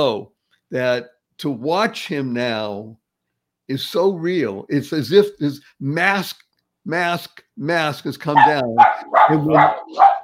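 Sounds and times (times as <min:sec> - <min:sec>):
speech: 0:00.0 - 0:03.0, 0:03.7 - 0:10.2
dog barking: 0:08.4 - 0:10.2.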